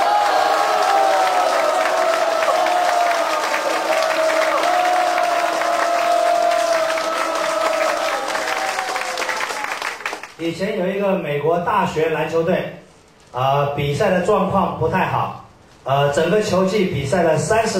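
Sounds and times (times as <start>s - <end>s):
people whooping and cheering: 0.0s - 10.0s
large audience clapping: 0.0s - 10.4s
speech: 10.4s - 17.7s.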